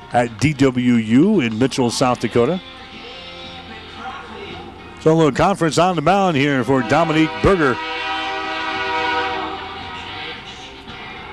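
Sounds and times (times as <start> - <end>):
speech: 0.1 - 2.9, 5.0 - 8.1
train whistle blaring by an old ballpark: 6.4 - 10.6.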